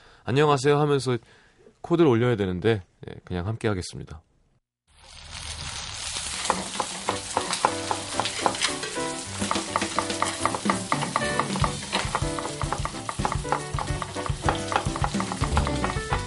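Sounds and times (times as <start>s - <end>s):
speech: 0.2s - 4.3s
mung bean pancake frying in hot oil: 4.9s - 15.6s.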